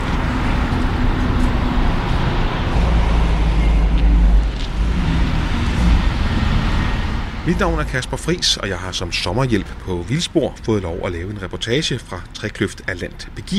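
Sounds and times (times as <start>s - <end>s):
heavier vehicle passing: 0.0s - 10.7s
low engine drone from passing cars and buses around a town hall square: 0.0s - 13.5s
speech: 7.5s - 13.5s.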